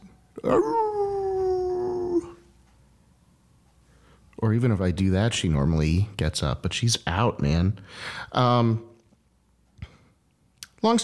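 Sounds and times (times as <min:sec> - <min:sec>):
speech: 0:00.4 - 0:01.2, 0:04.4 - 0:08.9, 0:10.8 - 0:11.0
person howling imitating a siren at a pet turtle: 0:00.4 - 0:02.5.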